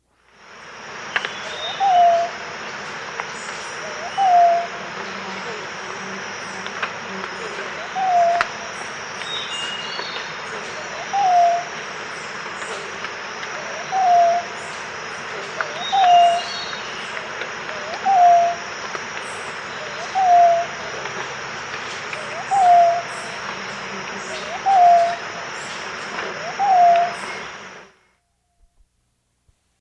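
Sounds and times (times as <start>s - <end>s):
Purplish-backed quail-dove calling in South America: 1.4s - 2.3s, 3.8s - 5.7s, 7.3s - 8.6s, 10.0s - 11.8s, 12.6s - 14.6s, 15.3s - 18.6s, 19.7s - 21.2s, 22.0s - 25.2s, 26.0s - 27.5s.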